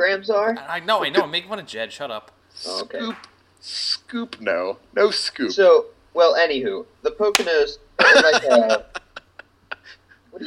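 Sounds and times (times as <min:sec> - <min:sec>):
people chatting: 0:00.0 - 0:09.0
speech: 0:00.0 - 0:09.0
palm slap to the face: 0:07.3 - 0:07.6
laughter: 0:08.0 - 0:10.1.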